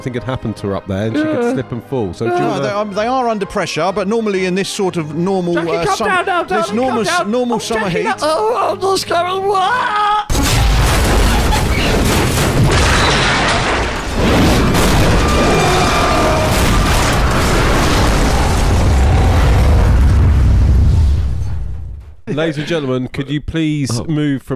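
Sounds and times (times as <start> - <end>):
speech: 0.0 - 10.4, 22.3 - 24.5
laughter: 1.2 - 1.7, 5.5 - 8.8, 22.3 - 24.1
crackling rumbling explosion debris: 10.3 - 22.3
massive explosion: 10.3 - 22.3.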